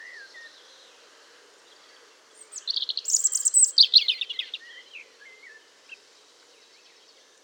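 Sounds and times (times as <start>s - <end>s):
European robin Erithacus rubecula singing: 2.4s - 5.0s.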